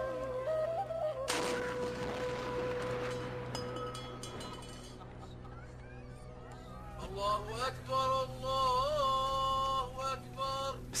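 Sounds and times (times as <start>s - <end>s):
steady outdoor hum: 0.0s - 10.9s
Ramadan iftar cannon blast: 1.3s - 3.7s
speech: 7.2s - 8.7s.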